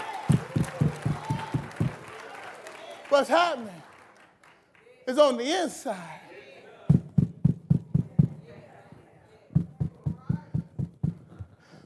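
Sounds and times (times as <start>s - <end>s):
firm knocking on a door: 0.3s - 2.0s, 6.9s - 8.4s, 9.6s - 11.4s
speech: 3.1s - 3.9s, 5.1s - 6.2s.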